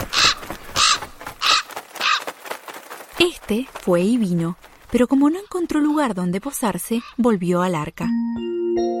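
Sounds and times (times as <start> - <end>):
crow cawing: 0.0 - 2.5, 7.0 - 7.2
speech: 3.2 - 8.9.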